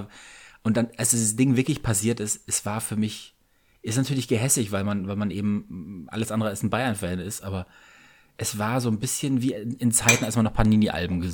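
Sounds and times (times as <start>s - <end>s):
speech: 0.0s - 11.3s
fork clinking on a plate while cutting cake: 10.1s - 10.4s.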